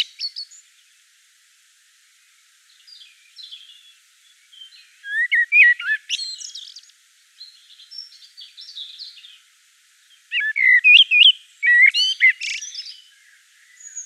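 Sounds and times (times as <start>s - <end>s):
common blackbird song in Provence: 0.0s - 1.0s, 2.2s - 14.0s.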